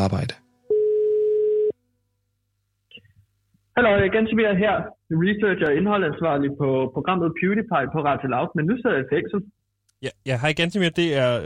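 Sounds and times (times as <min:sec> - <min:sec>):
speech: 0:00.0 - 0:00.4, 0:03.8 - 0:11.4
telephone ringing tone while placing a call to an institution: 0:00.7 - 0:01.8.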